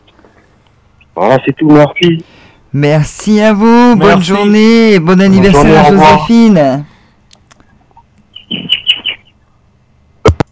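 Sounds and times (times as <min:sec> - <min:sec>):
speech: 0:01.2 - 0:06.9
small birds chirping: 0:07.9 - 0:09.5.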